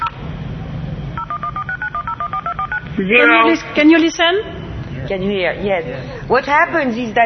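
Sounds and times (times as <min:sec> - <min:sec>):
DTMF keypad tones dialing a telephone number: 0:01.2 - 0:02.9
speech: 0:03.0 - 0:07.2.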